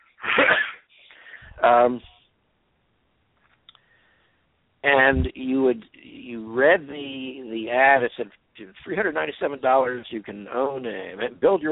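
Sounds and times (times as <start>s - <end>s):
person coughing: 0.2s - 0.9s
speech: 1.6s - 2.1s, 4.8s - 11.7s.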